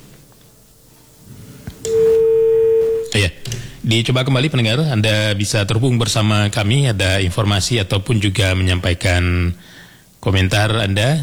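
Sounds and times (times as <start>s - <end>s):
soft telephone line noise: 1.7s - 4.1s
steady mid-pitched telephone line tone as a caller connects: 1.8s - 3.4s
telephone line clicks as a caller connects: 1.8s - 3.8s
speech: 3.2s - 11.2s.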